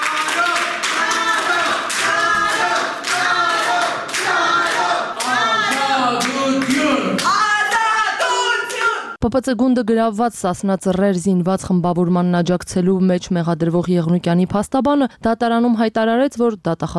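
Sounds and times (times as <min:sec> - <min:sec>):
crowded courtroom hall clapping rhythmically at an open court session: 0:00.0 - 0:09.2
speech: 0:09.2 - 0:16.9.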